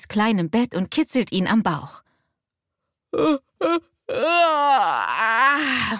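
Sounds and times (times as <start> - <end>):
speech: 0.1 - 2.1, 3.1 - 5.9
voice imitating a squirrel's yawn with breathy bursts and wavering moan: 3.1 - 5.9.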